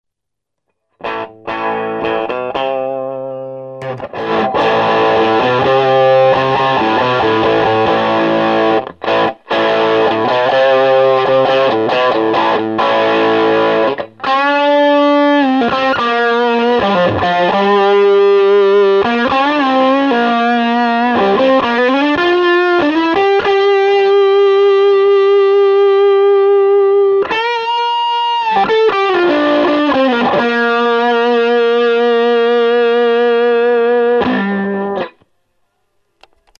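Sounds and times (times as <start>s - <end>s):
fuzz guitar: 1.0s - 35.3s.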